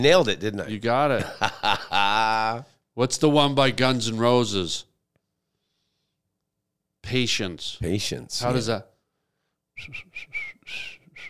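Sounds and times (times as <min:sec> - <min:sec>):
speech: 0:00.0 - 0:04.9, 0:07.0 - 0:08.9, 0:09.8 - 0:11.0
person trying to whistle a tune with breathy notes: 0:09.8 - 0:11.2.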